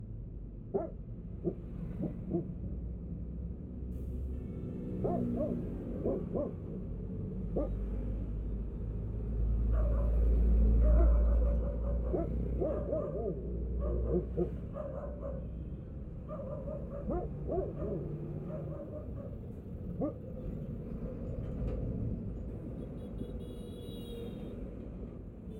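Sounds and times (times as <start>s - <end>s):
street noise after passive noise reduction: 0.0s - 25.5s
dog barking: 0.7s - 2.6s, 5.0s - 6.7s, 7.5s - 7.9s, 9.6s - 15.5s, 16.2s - 20.3s.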